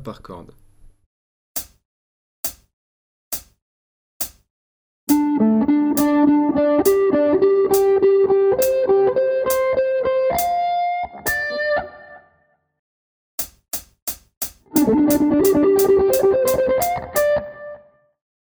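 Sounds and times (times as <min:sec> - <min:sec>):
three pentatonic notes: 0:05.1 - 0:10.6, 0:14.8 - 0:17.4.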